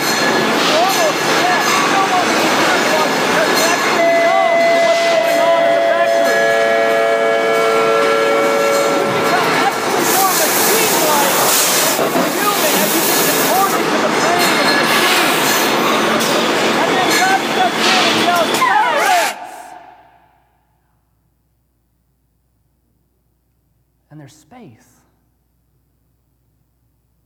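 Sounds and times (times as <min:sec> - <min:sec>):
factory machinery whirring and hissing: 0:00.0 - 0:20.4
several sustained whistle tones: 0:18.2 - 0:20.4.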